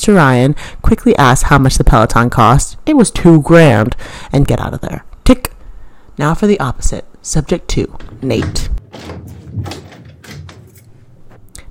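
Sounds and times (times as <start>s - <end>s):
speech: 0.0s - 5.6s, 6.2s - 9.8s
knock and brief rattle: 7.9s - 11.3s
door opening with a soft latch clunk: 8.0s - 11.0s.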